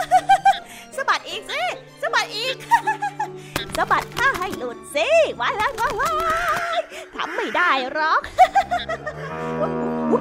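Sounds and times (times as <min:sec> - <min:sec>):
laughter: 0:00.0 - 0:00.7, 0:02.6 - 0:03.3, 0:06.0 - 0:10.1
speech: 0:03.8 - 0:09.8
old cow mooing angrily: 0:09.1 - 0:10.1.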